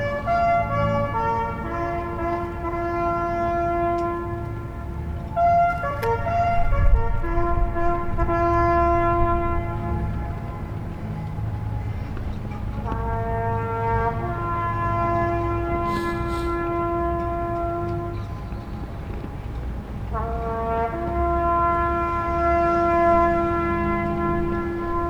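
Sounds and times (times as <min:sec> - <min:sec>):
loud sustained horn-like chord of several tones: 0:00.0 - 0:25.0
low rumble of traffic on a city street: 0:00.0 - 0:25.0.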